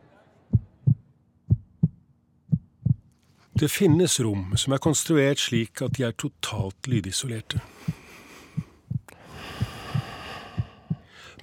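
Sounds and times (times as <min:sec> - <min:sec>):
person's own steady heartbeat thumping in a totally soundproofed room: 0:00.5 - 0:04.0, 0:05.8 - 0:06.7, 0:07.5 - 0:11.1
speech: 0:03.6 - 0:07.9.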